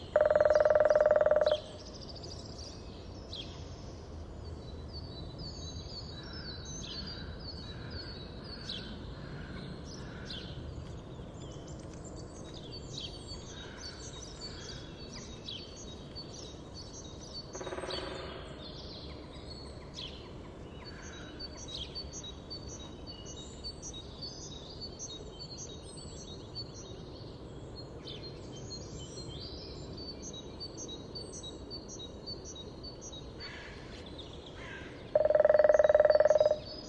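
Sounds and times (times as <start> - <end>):
grey-headed woodpecker in Landshut Hofgarten: 0.1 - 1.8, 17.5 - 18.5, 34.6 - 36.7.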